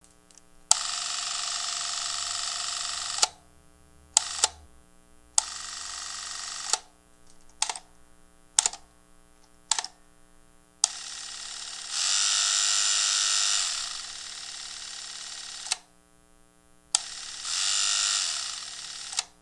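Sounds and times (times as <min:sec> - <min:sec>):
Super8 film motor running: 0:00.2 - 0:03.4, 0:04.2 - 0:04.6, 0:05.4 - 0:06.9, 0:10.8 - 0:15.9, 0:16.9 - 0:19.4.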